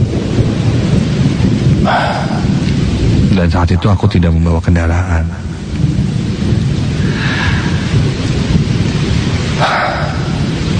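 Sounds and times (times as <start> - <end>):
deep rumble of thunder: 0.0 - 10.7
heavy rain pouring: 0.0 - 10.7
speech: 3.4 - 6.0.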